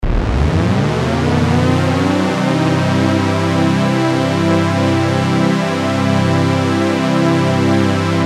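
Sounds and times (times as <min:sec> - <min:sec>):
synthesizer portamento from a VST plugin: 0:00.0 - 0:08.1.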